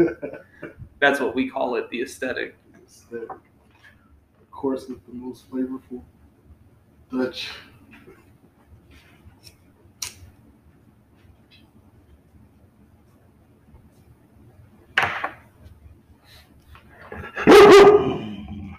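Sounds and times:
laughter: 0:00.0 - 0:00.8
speech: 0:00.0 - 0:03.5, 0:04.6 - 0:06.2, 0:07.1 - 0:07.7
dog barking: 0:17.3 - 0:18.4.

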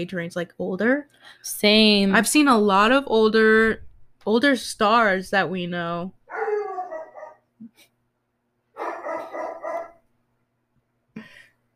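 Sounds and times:
speech: 0:00.0 - 0:06.2
dog barking, yelping and howling: 0:06.3 - 0:07.5, 0:08.8 - 0:10.0.

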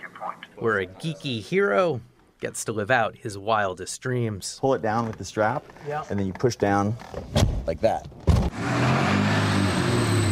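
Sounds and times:
speech: 0:00.2 - 0:09.2
brief loud thump: 0:07.2 - 0:08.6
DeLorean car engine running with a low droning hum: 0:08.4 - 0:10.3.

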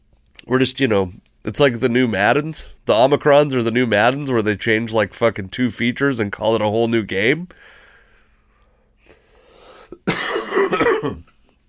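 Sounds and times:
speech: 0:00.5 - 0:07.8, 0:10.0 - 0:11.3
person fake coughing with exaggerated hacking: 0:09.9 - 0:11.4.

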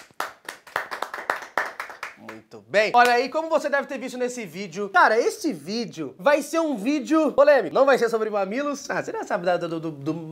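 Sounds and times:
hands clapping: 0:00.0 - 0:03.4
speech: 0:02.2 - 0:10.3.

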